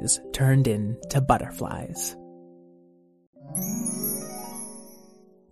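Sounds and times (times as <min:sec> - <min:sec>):
speech: 0:00.0 - 0:02.2
shimmering chime-like tone: 0:03.4 - 0:05.3.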